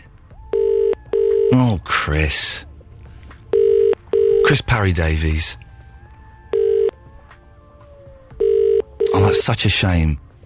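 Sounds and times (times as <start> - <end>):
telephone tone as a call rings through to voicemail: 0.5 - 1.6, 3.5 - 4.6, 6.5 - 7.0, 8.4 - 9.5
speech: 1.6 - 2.7, 4.5 - 5.6, 9.2 - 10.3.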